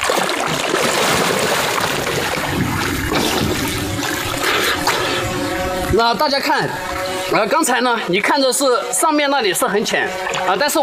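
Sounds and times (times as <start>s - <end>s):
river water rushing and splashing as a firefighter steps down into a river: 0.0s - 7.7s
speech: 6.0s - 10.8s.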